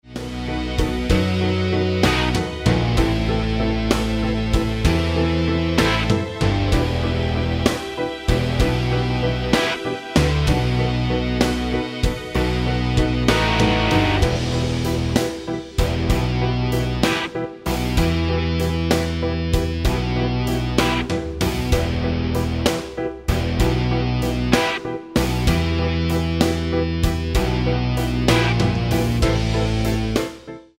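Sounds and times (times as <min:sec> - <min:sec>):
12 bar blues backing track in E minor: 0:00.0 - 0:30.7.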